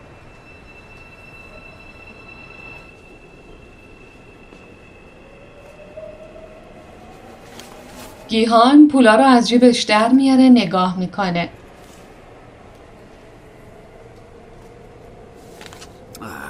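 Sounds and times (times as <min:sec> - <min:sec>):
faint thin high squeal of train: 0:00.0 - 0:08.4
train running along rails: 0:00.0 - 0:16.2
speech: 0:08.3 - 0:11.6.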